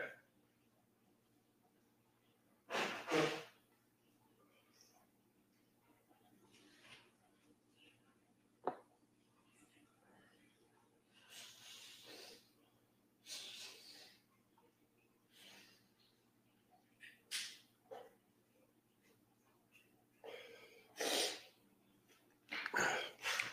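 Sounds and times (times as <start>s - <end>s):
faint hum: 0.0s - 23.5s
person sneezing: 2.7s - 3.6s, 21.0s - 21.5s.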